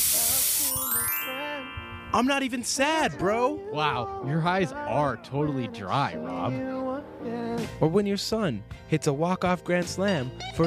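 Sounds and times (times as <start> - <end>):
spray bottle hiss: 0.0 - 0.8
soft tonal sounds: 0.7 - 3.5
speech: 2.1 - 10.6.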